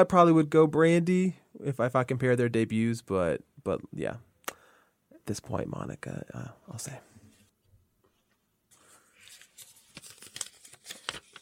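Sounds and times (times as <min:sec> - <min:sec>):
speech: 0:00.0 - 0:04.3, 0:05.3 - 0:07.1
slips of paper rustling and tearing: 0:08.8 - 0:11.4.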